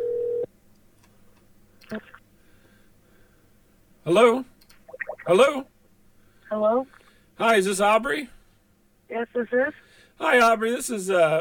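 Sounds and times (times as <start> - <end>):
ringback tone of an outgoing phone call: 0.0 - 0.4
quiet phone line hiss: 0.0 - 0.5
speech: 1.9 - 2.1, 4.1 - 4.5, 5.3 - 5.7, 6.5 - 8.4, 9.1 - 11.3.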